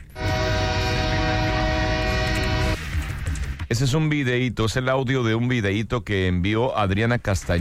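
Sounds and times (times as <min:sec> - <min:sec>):
horn of a train heading to Calexico: 0:00.0 - 0:02.8
rumbling rail noise of a passing train: 0:00.0 - 0:03.2
speech: 0:03.7 - 0:07.5.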